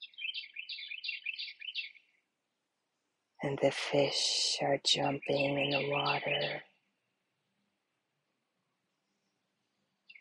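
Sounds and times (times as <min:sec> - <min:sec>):
birds singing along a riverbank: 0:00.0 - 0:02.2, 0:05.0 - 0:06.6
speech: 0:03.4 - 0:06.7.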